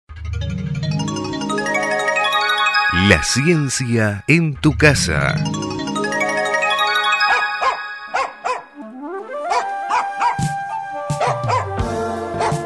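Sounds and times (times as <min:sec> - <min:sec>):
bright sustained musical background: 0:00.3 - 0:10.0
speech: 0:03.0 - 0:05.7
dog barking: 0:08.2 - 0:08.6, 0:09.5 - 0:10.4, 0:11.2 - 0:11.7, 0:12.4 - 0:12.6.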